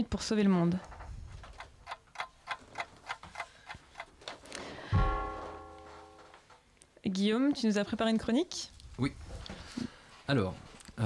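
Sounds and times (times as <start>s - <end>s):
speech: 0.0s - 1.0s, 7.2s - 9.3s, 10.3s - 11.0s
clock ticking: 1.8s - 4.1s
sustained tone: 5.0s - 6.4s.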